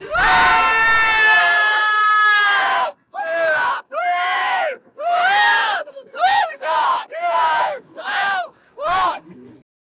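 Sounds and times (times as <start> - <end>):
people shouting: 0.0 - 9.2.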